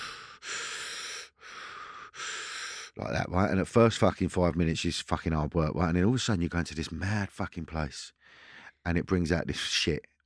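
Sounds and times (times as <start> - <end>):
heavy forceful breathing as done in breath work, lying down: 0.0 - 3.0
speech: 3.0 - 8.2, 8.8 - 10.2.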